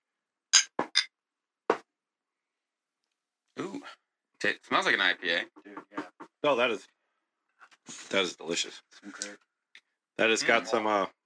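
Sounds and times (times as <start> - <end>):
glasses of sour IPA beer clinking in a toast: 0.6 - 1.1
speech: 3.8 - 7.0, 7.9 - 9.5, 10.2 - 11.2.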